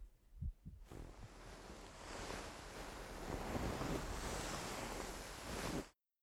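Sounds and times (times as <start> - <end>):
soft low thumps of an older brother's heartbeat: 0.0 - 1.3
steady broad whooshing rush: 0.4 - 5.8.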